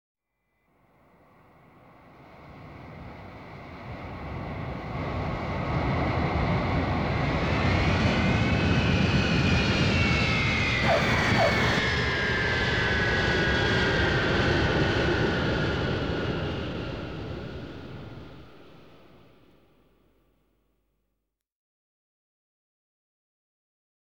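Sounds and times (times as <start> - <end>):
Boeing 707 airplane landing: 4.4 - 19.2.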